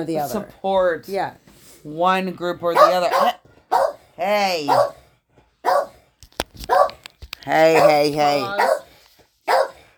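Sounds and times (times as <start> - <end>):
speech: 0.0 - 3.4, 4.2 - 5.0, 7.4 - 8.8
dog barking: 2.7 - 5.0, 5.6 - 6.0, 6.7 - 7.0, 7.7 - 9.9.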